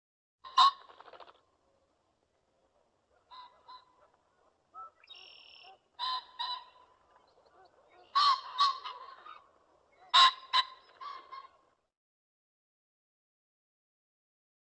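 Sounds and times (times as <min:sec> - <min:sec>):
pheasant harsh raspy calls: 0:00.4 - 0:01.3, 0:03.2 - 0:11.6.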